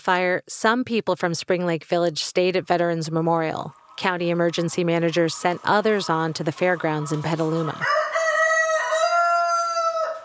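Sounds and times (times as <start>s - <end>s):
speech: 0.0s - 8.2s
rooster crowing at a fire evacuation shelter full of livestock: 7.8s - 10.2s.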